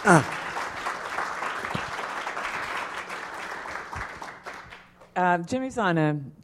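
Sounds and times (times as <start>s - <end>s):
speech: 0.0s - 0.4s, 5.2s - 6.4s
crowd in Baltimore applauding: 0.0s - 5.0s.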